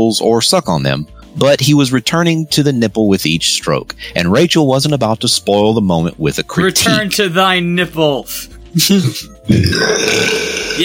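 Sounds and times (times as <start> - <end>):
speech: 0.0 - 10.8
loud throaty burp: 9.4 - 10.8.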